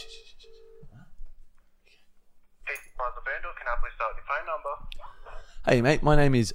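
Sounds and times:
outgoing phone call ringing tone: 0.0 - 0.9
speech: 2.7 - 6.5.

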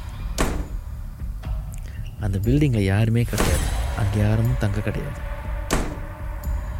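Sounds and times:
heavy door slamming shut: 0.4 - 0.8, 5.7 - 6.1
speech: 2.2 - 5.3.

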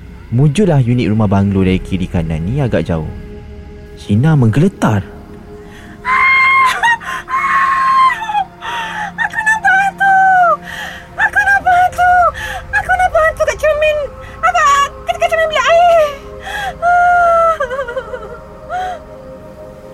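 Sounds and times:
speech: 0.3 - 3.3, 4.0 - 5.2
woman screaming, nearly crying: 5.8 - 19.0.

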